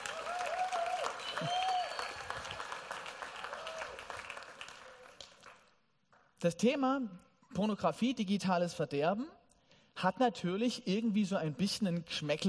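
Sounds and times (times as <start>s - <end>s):
cheers: 0.0s - 5.2s
audience applauding: 0.0s - 5.7s
whistles: 1.1s - 2.5s
speech: 6.4s - 9.4s, 10.0s - 12.4s.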